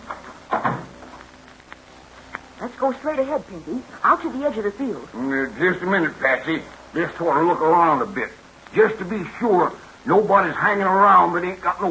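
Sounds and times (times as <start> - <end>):
door swinging shut with hollow thud and rattle: 0.1 - 1.0
small faint clicks: 1.2 - 2.5
speech: 2.6 - 11.8.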